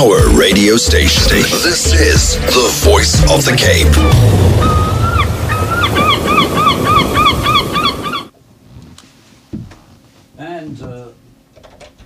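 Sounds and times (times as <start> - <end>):
speech: 0.0 - 4.9
steady wash of surf: 0.0 - 8.3
seagulls squawking: 4.0 - 8.3.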